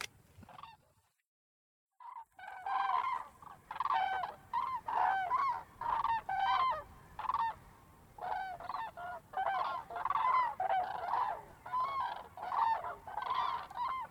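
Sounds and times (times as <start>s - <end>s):
cranes trumpeting in flight over Polder Glies in Bremerhaven Germany: 2.0s - 14.0s.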